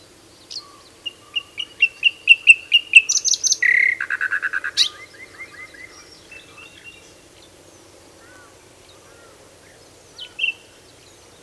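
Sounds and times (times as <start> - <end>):
common nightingale Luscinia megarhynchos song: 0.0 - 7.6, 8.7 - 11.4.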